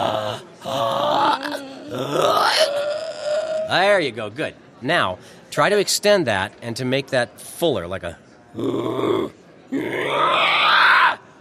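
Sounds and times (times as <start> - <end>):
human voice imitating a pig's grunt on an inhale: 0.0 - 3.7, 8.6 - 10.3
speech: 3.7 - 10.8.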